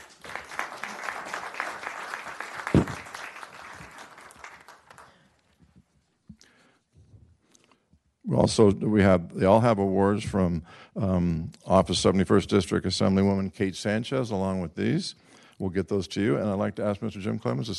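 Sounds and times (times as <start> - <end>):
audience applause: 0.0 - 5.2
speech: 8.4 - 17.7.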